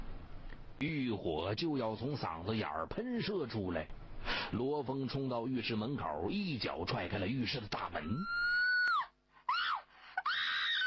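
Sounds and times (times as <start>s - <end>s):
speech: 0.8s - 8.4s
young woman screaming while bathing in a bathroom: 8.0s - 10.8s.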